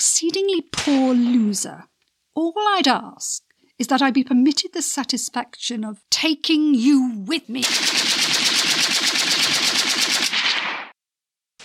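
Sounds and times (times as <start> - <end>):
speech: 0.2 - 8.4
automatic gunfire in a radio drama shootout: 7.6 - 10.9.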